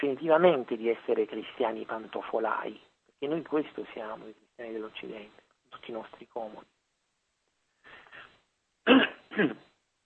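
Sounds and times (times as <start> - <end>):
speech: 0.1 - 6.8, 8.8 - 9.7
person coughing harshly: 8.8 - 9.7
soft throat clearing: 8.9 - 9.7.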